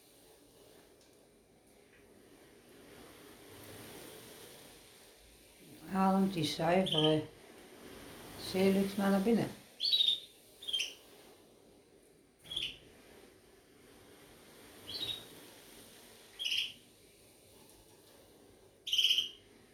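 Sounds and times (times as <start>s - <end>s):
soft steady hiss: 0.0s - 19.7s
birds chirping: 5.9s - 7.3s, 8.4s - 11.0s, 12.4s - 12.8s, 14.9s - 15.3s, 16.4s - 16.8s, 18.8s - 19.4s
speech: 6.0s - 7.4s, 8.5s - 9.6s.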